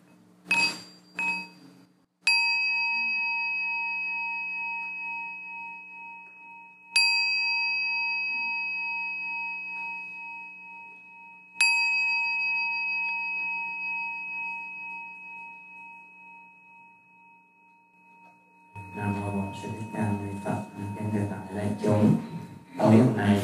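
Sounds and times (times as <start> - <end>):
meditation bell struck during an evening retreat in Orange California USA: 0.5 - 23.3.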